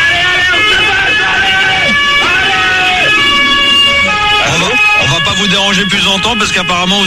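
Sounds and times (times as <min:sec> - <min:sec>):
siren of an arriving police van: 0:00.0 - 0:07.0
speech: 0:05.8 - 0:07.0.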